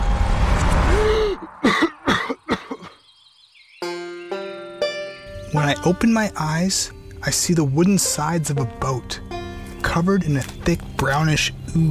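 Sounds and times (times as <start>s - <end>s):
rushing noise: 0.0s - 2.1s
person coughing and gasping for air on a boat floor: 1.1s - 3.0s
steady musical tones: 3.8s - 11.8s
speech: 5.6s - 11.8s.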